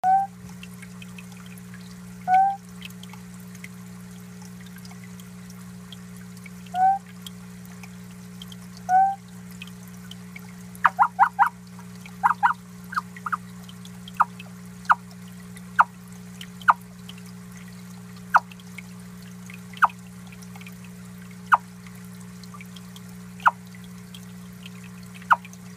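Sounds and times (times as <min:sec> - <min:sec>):
Theloderma corticale calling: 0:00.0 - 0:00.3, 0:02.3 - 0:02.6, 0:06.7 - 0:07.0, 0:08.9 - 0:09.2, 0:10.8 - 0:11.6, 0:12.2 - 0:13.4, 0:14.2 - 0:15.1, 0:23.4 - 0:23.6.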